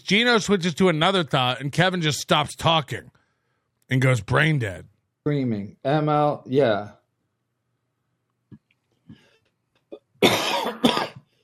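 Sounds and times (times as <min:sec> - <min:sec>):
speech: 0:00.1 - 0:03.2, 0:03.9 - 0:07.0
person coughing with a lingering cough: 0:09.9 - 0:11.3.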